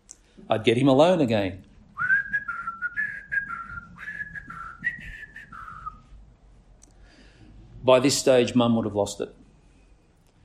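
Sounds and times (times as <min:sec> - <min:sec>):
speech: 0:00.4 - 0:01.7, 0:07.9 - 0:09.4
person whistling a wandering melody of sliding notes: 0:02.0 - 0:06.1.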